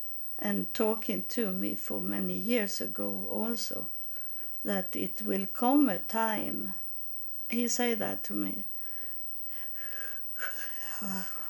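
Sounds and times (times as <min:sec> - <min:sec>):
speech: 0:00.4 - 0:04.0, 0:04.6 - 0:06.8, 0:07.5 - 0:08.7, 0:10.4 - 0:11.4
heavy raspy wheezing breaths: 0:08.8 - 0:11.4.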